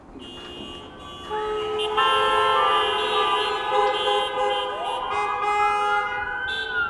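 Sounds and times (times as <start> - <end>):
steady traffic noise: 0.0 - 6.8
emergency vehicle sirens wailing: 3.2 - 6.8.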